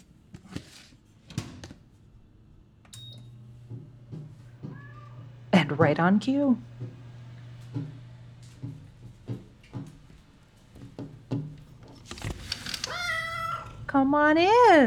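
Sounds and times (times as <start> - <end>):
steady low hum: 2.0 - 14.8
soft knocks and clatters: 3.6 - 5.0, 6.7 - 12.6
feral black cat meowing: 4.6 - 5.4, 12.8 - 13.9
speech: 5.7 - 6.8, 14.0 - 14.8.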